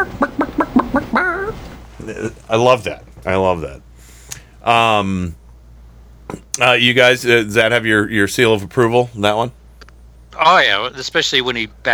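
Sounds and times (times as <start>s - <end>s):
person imitating a chicken: 0.0s - 1.7s
speech: 2.1s - 3.9s, 4.6s - 5.4s, 6.3s - 9.6s, 10.3s - 11.9s.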